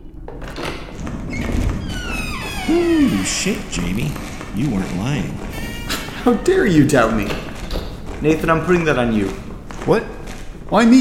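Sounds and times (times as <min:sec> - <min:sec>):
heavy door sliding open with grinding rumble and squeaks: 0:00.4 - 0:09.5
speech: 0:02.7 - 0:07.5, 0:08.2 - 0:11.0.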